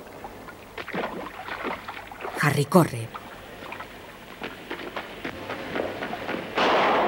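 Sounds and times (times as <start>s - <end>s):
rain-like patter: 0.0s - 7.0s
speech: 2.4s - 3.2s
loud sharp gunshot: 6.6s - 7.0s.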